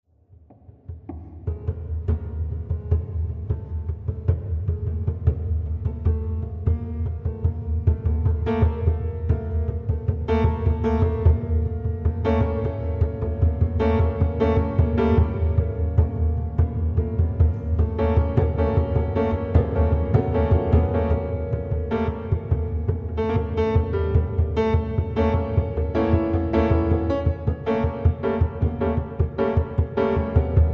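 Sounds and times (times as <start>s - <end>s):
prepared piano: 1.5s - 30.7s.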